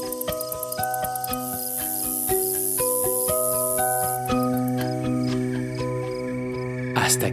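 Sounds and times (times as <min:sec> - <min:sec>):
short chirping pulses: 0:00.0 - 0:05.0
shrill high cicada buzz: 0:00.0 - 0:07.0
light musical backing of steady notes and soft percussion: 0:00.0 - 0:07.3
speech: 0:07.1 - 0:07.3.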